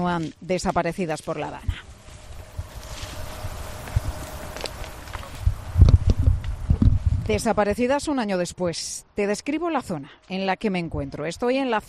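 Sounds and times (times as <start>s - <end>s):
speech: 0.0s - 1.9s, 7.3s - 11.8s
several people's footsteps crunching on a loose sandy path outdoors: 0.0s - 7.7s
light wind hiss: 1.6s - 8.6s.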